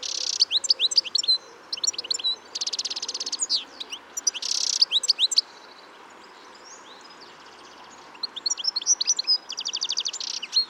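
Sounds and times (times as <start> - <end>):
European goldfinch Carduelis carduelis chirping: 0.0 - 5.4, 8.2 - 10.6.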